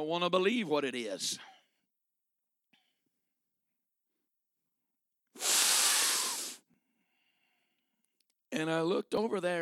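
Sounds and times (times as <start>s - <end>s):
speech: 0.0s - 1.5s, 8.6s - 9.6s
voice imitating a forceful sniff of snorting a line: 5.4s - 6.6s.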